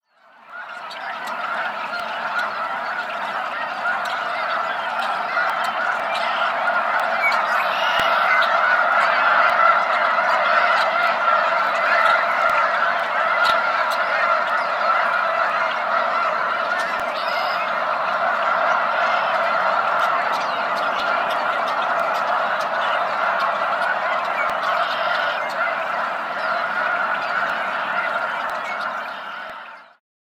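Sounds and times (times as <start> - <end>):
snow goose: 0.1 - 30.0.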